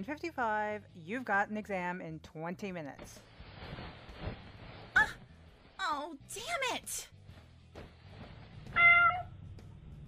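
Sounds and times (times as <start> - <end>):
speech: 0.0 - 3.8, 5.8 - 7.2
cat meowing: 8.7 - 9.4.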